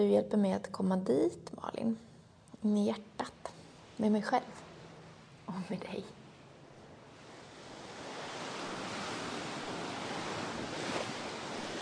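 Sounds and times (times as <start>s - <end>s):
speech: 0.0s - 4.6s, 5.5s - 6.2s
sea waves at the shoreline: 3.4s - 11.8s.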